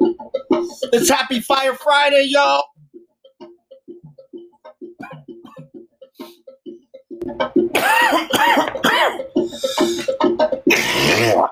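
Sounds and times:
speech: 0.6s - 2.7s, 7.3s - 10.4s, 11.0s - 11.5s
harsh throaty coughing: 5.0s - 5.7s, 7.8s - 10.1s, 10.7s - 11.4s.

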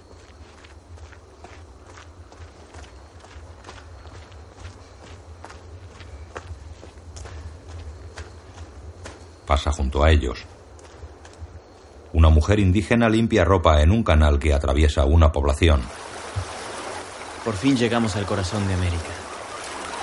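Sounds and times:
footsteps of young man walking along a road carrying bundles: 0.0s - 9.5s, 10.4s - 12.1s
speech: 9.5s - 10.5s, 12.2s - 16.0s, 17.5s - 19.2s.

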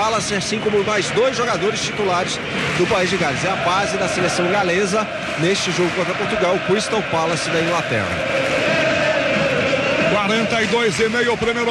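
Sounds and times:
large crowd of football fans chanting in a stadium: 0.0s - 11.6s
speech: 0.2s - 8.5s, 10.2s - 11.6s.

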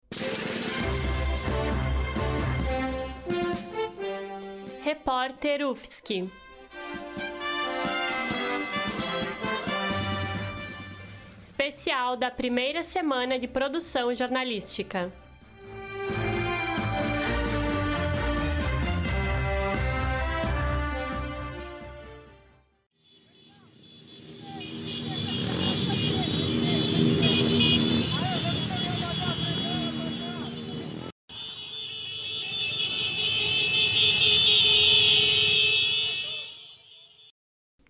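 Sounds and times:
short musical intro: 0.1s - 4.8s, 6.4s - 11.4s, 15.2s - 22.6s
shrill sustained horns blaring over the crowd: 0.8s - 4.8s, 6.4s - 11.5s, 15.6s - 37.3s
speech: 5.2s - 7.0s, 11.7s - 15.3s
dense rumble of engines in a motorcycle protest convoy of app delivery workers: 23.6s - 31.1s.

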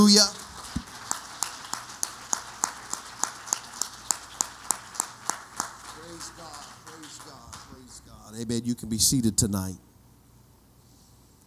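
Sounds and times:
speech: 0.0s - 0.4s, 8.5s - 9.9s
audience clapping hands in praise: 0.0s - 8.4s.

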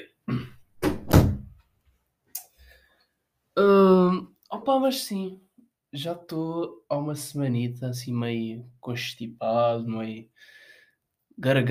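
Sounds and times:
door thudding shut: 0.8s - 1.6s
speech: 4.7s - 10.6s, 11.4s - 11.6s.

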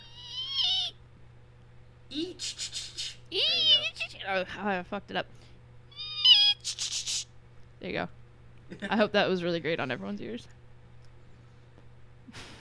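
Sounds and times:
person imitating the whistling night cry of a legendary large evil bird: 0.0s - 1.0s, 2.1s - 3.9s, 5.9s - 7.3s
faint low hum: 0.0s - 12.5s
speech: 2.1s - 5.4s, 7.8s - 10.6s.

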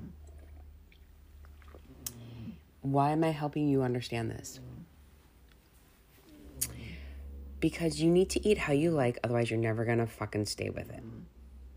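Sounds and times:
swallowing: 0.0s - 2.8s, 6.3s - 7.2s
low steady hum: 0.0s - 11.7s
person sipping coffee: 0.2s - 2.7s
speech: 2.9s - 4.7s, 7.6s - 11.2s.

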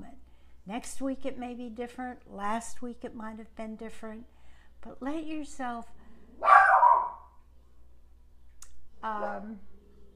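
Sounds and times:
speech: 0.7s - 6.5s, 9.0s - 9.7s
dog barking: 6.4s - 7.4s.

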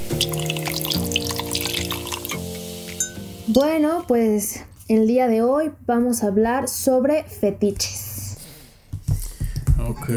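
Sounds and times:
drinks pouring into glasses: 0.0s - 4.0s
speech: 3.6s - 8.0s, 9.9s - 10.1s.

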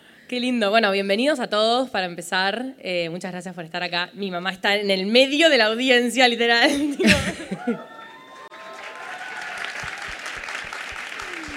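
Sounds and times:
speech: 0.3s - 8.0s
laughter: 6.7s - 8.2s, 11.0s - 11.5s
live audience clapping and cheering: 7.6s - 11.5s.

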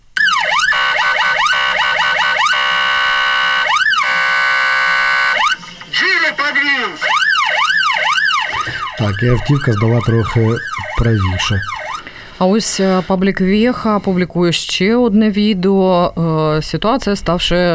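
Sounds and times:
ambulance siren yelping and wailing: 0.2s - 13.1s
speech: 9.0s - 11.8s, 12.4s - 17.7s.

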